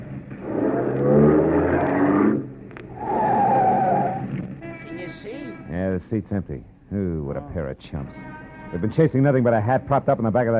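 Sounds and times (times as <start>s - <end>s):
car engine roaring: 0.0s - 4.6s
car tires screeching as the car pulls up: 0.0s - 4.6s
speech: 6.0s - 10.5s.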